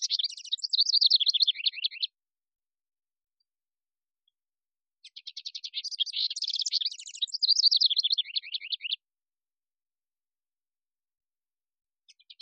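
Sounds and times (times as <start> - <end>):
house wren singing bubbly trilled cascades: 0.0 - 2.2, 5.0 - 9.0, 12.0 - 12.4.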